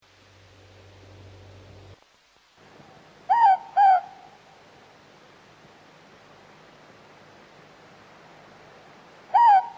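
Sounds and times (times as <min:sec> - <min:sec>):
quiet hiss: 0:00.0 - 0:09.7
morepork giving two-note hoot: 0:03.3 - 0:04.4, 0:09.3 - 0:09.7.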